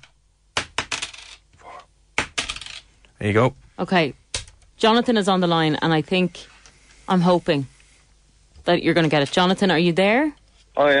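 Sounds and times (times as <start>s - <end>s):
coins dropped onto a hard surface: 0.8s - 1.4s, 2.4s - 2.9s
speech: 3.2s - 4.2s, 4.8s - 6.5s, 7.1s - 7.7s, 8.7s - 10.9s.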